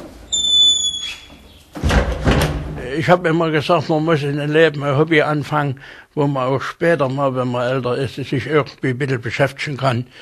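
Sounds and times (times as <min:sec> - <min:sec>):
key squealing in a door lock on the second floor of a castle: 0:00.3 - 0:01.4
speech: 0:02.9 - 0:10.1.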